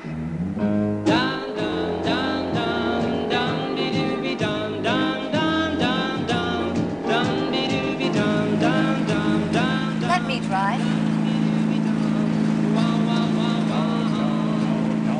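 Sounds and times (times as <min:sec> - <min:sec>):
car engine revving with a low droning hum: 0:00.0 - 0:15.1.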